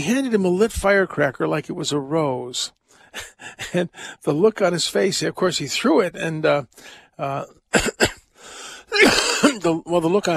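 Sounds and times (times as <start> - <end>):
speech: 0.0 - 8.1, 8.9 - 10.3
person coughing while recovering from an illness: 7.7 - 8.2, 8.9 - 9.7
breathy throat-clearing: 7.7 - 8.3, 8.9 - 9.7.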